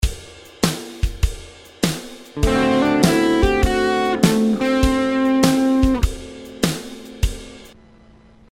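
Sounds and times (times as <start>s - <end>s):
major 6th D7 chord of 3 essential notes: 2.4s - 7.7s.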